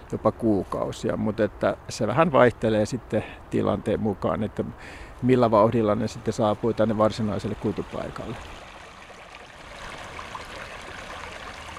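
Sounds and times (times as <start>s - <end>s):
speech: 0.1s - 8.6s
small brook flowing: 5.4s - 11.7s.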